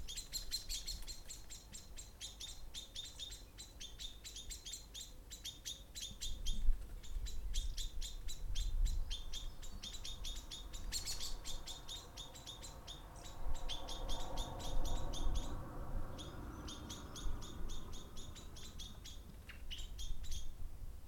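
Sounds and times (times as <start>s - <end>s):
bird chirping: 0.0s - 21.0s
cars passing: 12.4s - 19.0s.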